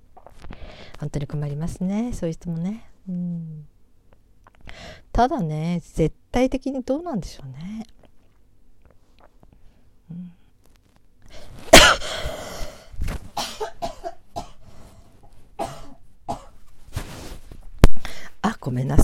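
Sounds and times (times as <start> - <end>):
speech: 1.0 - 3.7, 5.2 - 7.9, 18.7 - 19.0
person coughing: 11.7 - 12.8, 13.4 - 14.6, 15.6 - 16.6.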